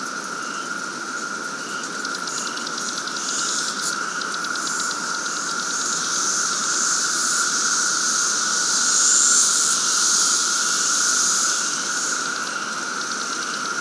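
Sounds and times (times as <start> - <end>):
periodical cicada chorus drone: 0.0 - 13.7.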